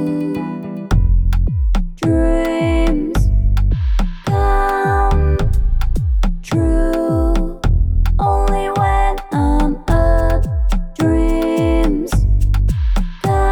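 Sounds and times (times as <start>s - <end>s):
pop beat: 0.1s - 13.4s.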